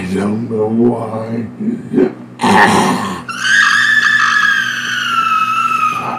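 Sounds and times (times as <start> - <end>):
speech: 0.1 - 3.0
woman screaming high-pitched: 3.3 - 6.1.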